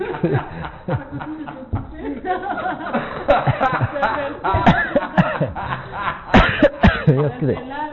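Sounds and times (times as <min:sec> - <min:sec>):
laughter: 0:00.0 - 0:07.9
speech: 0:00.2 - 0:01.4
person coughing close to the microphone: 0:04.6 - 0:05.4, 0:06.4 - 0:07.2.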